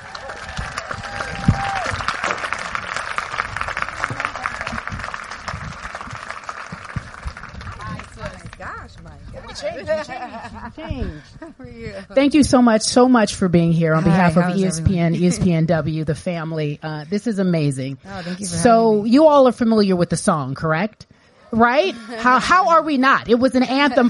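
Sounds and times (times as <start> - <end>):
excited voices and whoops: 0.0 - 2.2
large audience clapping and cheering for guest arriving on stage: 0.0 - 9.7
laughter: 9.5 - 11.8
speech: 9.7 - 24.0.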